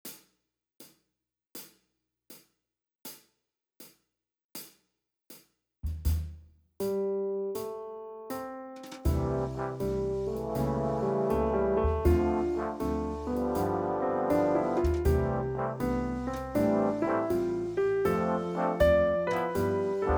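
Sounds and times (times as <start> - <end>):
slow swing music: 6.9 - 20.1.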